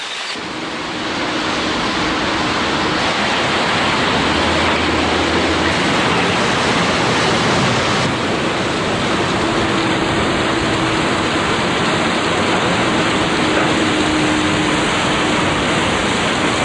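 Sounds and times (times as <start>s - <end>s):
waterfall rushing: 0.0s - 16.6s.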